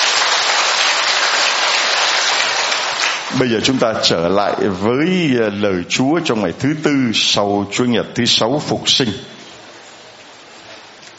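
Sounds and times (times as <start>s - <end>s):
large church audience applause at a Catholic service in Saigon: 0.0s - 4.0s
speech: 3.4s - 9.3s.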